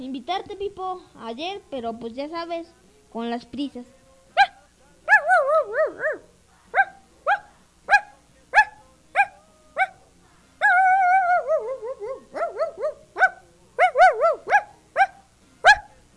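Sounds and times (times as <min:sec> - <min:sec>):
speech: 0:00.0 - 0:04.0
little dog barking: 0:04.4 - 0:10.0, 0:10.6 - 0:16.0.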